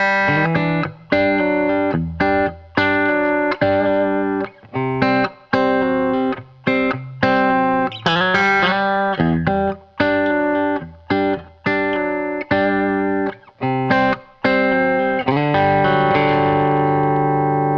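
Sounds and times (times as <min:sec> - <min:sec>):
country guitar outro: 0:00.0 - 0:17.7.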